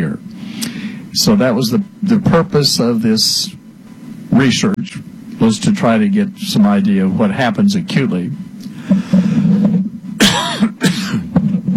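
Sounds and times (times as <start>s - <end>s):
low steady hum: 0.0s - 11.7s
speech: 1.2s - 3.6s, 4.4s - 8.5s
person coughing: 10.2s - 11.3s.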